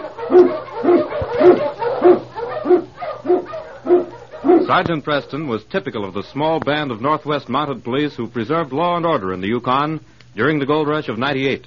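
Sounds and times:
Eskimo sled lead dog barking: 0:00.0 - 0:05.4
low constant hum: 0:00.0 - 0:11.6
speech: 0:04.7 - 0:11.6.

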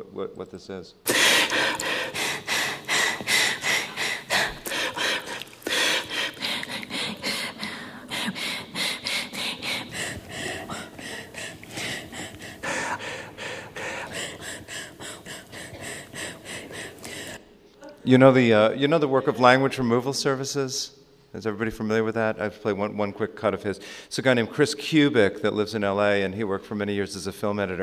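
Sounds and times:
speech: 0:00.0 - 0:02.2, 0:18.1 - 0:27.8
sharp inhaled breaths and gasps edited from radio speech: 0:01.1 - 0:17.5.

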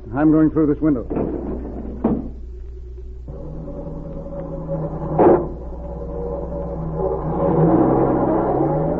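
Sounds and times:
speech: 0:00.1 - 0:01.3
car motor revving and pulling away: 0:05.1 - 0:08.9.

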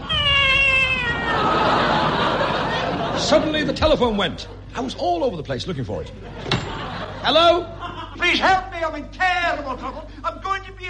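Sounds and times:
cat yowling: 0:00.0 - 0:01.8
laughter: 0:01.0 - 0:04.9, 0:06.1 - 0:08.7
speech: 0:03.3 - 0:06.6, 0:07.2 - 0:10.8.

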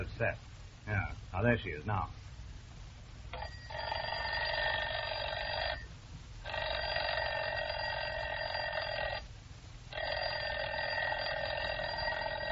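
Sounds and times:
speech: 0:00.0 - 0:02.2
alarm clock bell ringing: 0:03.4 - 0:05.8, 0:06.5 - 0:09.2, 0:10.0 - 0:12.4.

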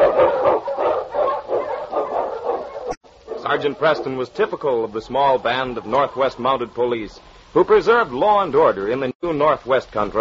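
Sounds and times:
husky lead dog barking: 0:00.0 - 0:04.2
speech: 0:03.5 - 0:10.2.

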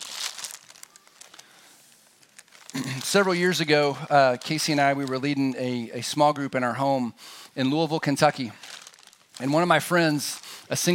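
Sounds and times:
brown paper bags being grabbed and crumpled: 0:00.0 - 0:05.4, 0:08.4 - 0:10.5
speech: 0:02.8 - 0:08.6, 0:09.4 - 0:10.9.

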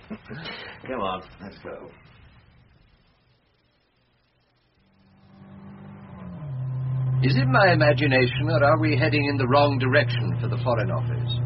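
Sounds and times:
speech: 0:00.1 - 0:02.1, 0:07.2 - 0:11.4
car engine idling then revving as the car pulls away: 0:04.9 - 0:11.4.

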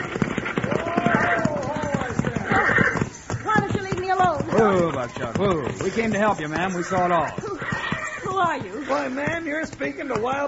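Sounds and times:
horses' hooves clip-clopping as horses are stopped: 0:00.0 - 0:10.4
speech: 0:04.7 - 0:07.5, 0:08.4 - 0:10.4.

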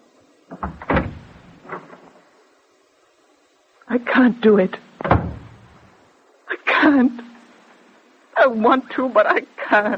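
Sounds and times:
door opening with clunks and a rattling thud: 0:00.5 - 0:02.1, 0:05.0 - 0:05.9
speech: 0:03.9 - 0:05.2, 0:08.5 - 0:09.9.

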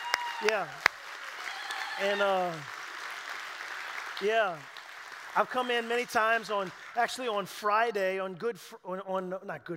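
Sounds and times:
drawn-out cheering voices sliding downward in pitch: 0:00.0 - 0:07.3
steady crowd applause: 0:00.0 - 0:07.4
speech: 0:00.4 - 0:00.9, 0:02.0 - 0:02.8, 0:04.2 - 0:04.7, 0:05.3 - 0:09.7.

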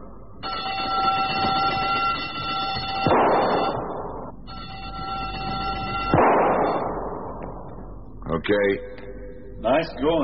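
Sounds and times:
steady harmonic buzzer tone at shooting-range targets: 0:00.4 - 0:03.8, 0:04.4 - 0:06.8
gunshots fired at shooting-range targets: 0:00.8 - 0:04.4, 0:05.8 - 0:07.8
speech: 0:08.5 - 0:08.9, 0:09.6 - 0:10.2.

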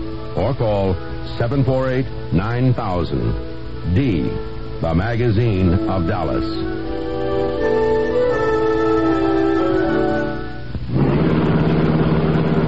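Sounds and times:
speech: 0:00.4 - 0:06.8
car engine humming and accelerating: 0:06.8 - 0:12.6.

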